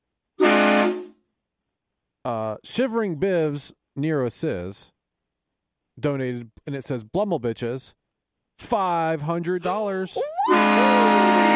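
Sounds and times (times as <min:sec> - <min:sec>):
train horn sound effect: 0:00.4 - 0:01.2, 0:10.5 - 0:11.5
speech: 0:02.3 - 0:04.9, 0:06.0 - 0:08.0, 0:08.6 - 0:11.2.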